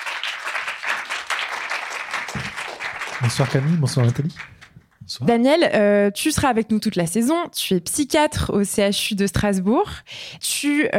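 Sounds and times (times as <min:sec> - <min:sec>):
audience applause welcoming a guest onto a stage: 0:00.0 - 0:04.8
speech: 0:03.2 - 0:10.9.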